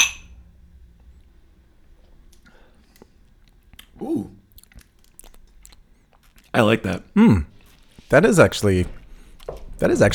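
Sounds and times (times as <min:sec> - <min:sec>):
wine glasses clinking in a toast: 0:00.0 - 0:00.4
low quiet hum: 0:00.0 - 0:10.1
speech: 0:04.0 - 0:04.4, 0:06.6 - 0:07.5, 0:08.1 - 0:09.0, 0:09.8 - 0:10.1.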